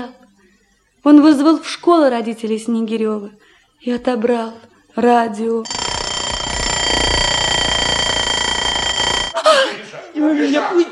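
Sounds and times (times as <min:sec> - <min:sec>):
speech: 0:00.0 - 0:00.2, 0:01.0 - 0:05.8
alarm clock ringing: 0:05.6 - 0:09.4.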